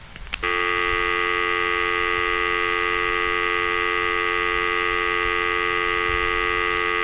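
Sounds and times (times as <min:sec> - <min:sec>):
telephone dial tone: 0:00.4 - 0:07.0.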